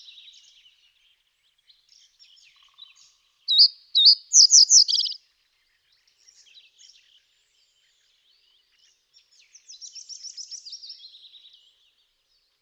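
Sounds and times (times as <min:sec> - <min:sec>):
common reed bunting Emberiza schoeniclus calling: 0:03.6 - 0:05.1.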